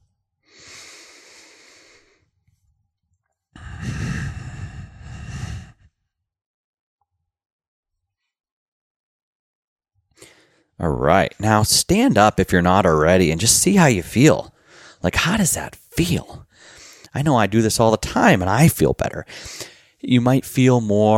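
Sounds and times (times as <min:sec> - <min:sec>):
slow audible breathing through the nose as a breathing demonstration: 0:00.4 - 0:02.3, 0:03.6 - 0:06.0, 0:14.6 - 0:15.0, 0:16.5 - 0:17.1, 0:19.3 - 0:20.0
speech: 0:10.8 - 0:21.1.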